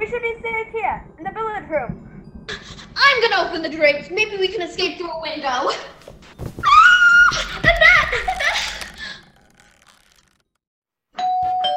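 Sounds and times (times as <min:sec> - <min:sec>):
speech: 0:03.0 - 0:06.0
excited shrieks: 0:06.6 - 0:10.2.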